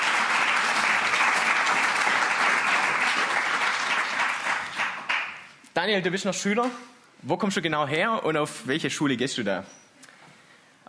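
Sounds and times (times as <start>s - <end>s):
audience applauding a school pupil: 0.0s - 5.5s
speech: 5.8s - 9.8s.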